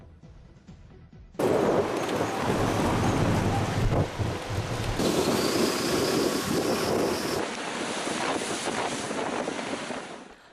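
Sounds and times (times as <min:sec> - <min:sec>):
dense wash of driving rain: 0:01.4 - 0:10.3
crashing surf: 0:01.4 - 0:10.4
southwesterly lodos windstorm roaring in gusts in western Turkey: 0:01.4 - 0:10.5.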